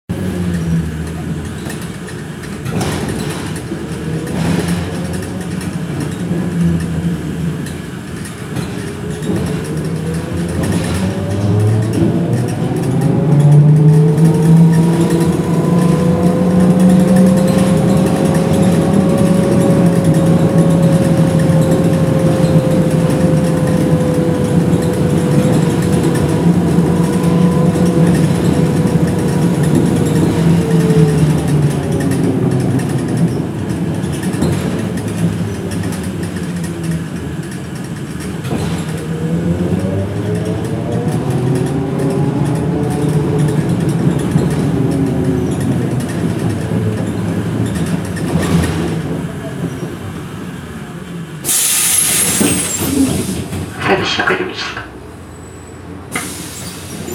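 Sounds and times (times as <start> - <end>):
bus: 0.0 - 57.1.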